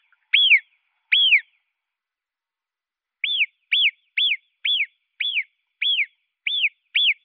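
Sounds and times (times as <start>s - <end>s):
marmot whistles: 0.3s - 1.5s, 3.2s - 7.2s.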